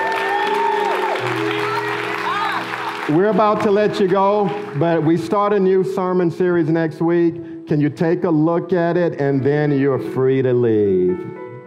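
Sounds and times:
church audience applauding: 0.0s - 5.8s
sustained organ or keyboard chords: 0.0s - 11.6s
speech: 3.1s - 11.4s.

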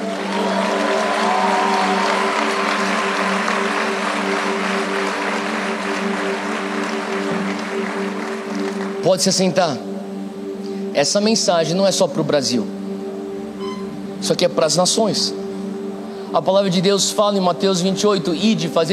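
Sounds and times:
large standing crowd applauding: 0.0s - 9.0s
steady low musical drone: 0.0s - 18.9s
speech: 9.1s - 9.9s, 11.0s - 12.8s, 14.2s - 15.4s, 16.3s - 18.9s.

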